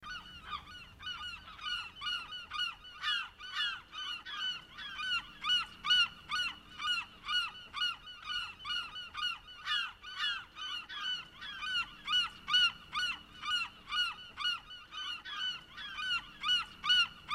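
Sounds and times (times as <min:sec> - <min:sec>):
seagulls in a jungle: 0:00.0 - 0:17.3.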